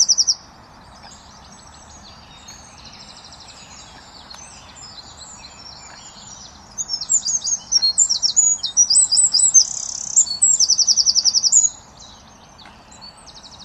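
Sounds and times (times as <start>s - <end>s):
Eurasian wren chip call: 0.0s - 0.4s, 5.6s - 11.8s
Eurasian wren Troglodytes troglodytes singing trills and twittering notes: 0.0s - 13.6s.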